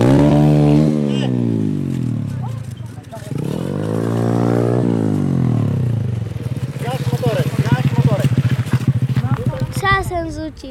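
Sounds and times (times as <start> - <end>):
mini speedway motorcycle with 125 cc engine revving: 0.0 - 10.4
voices: 1.0 - 4.5, 6.4 - 10.6.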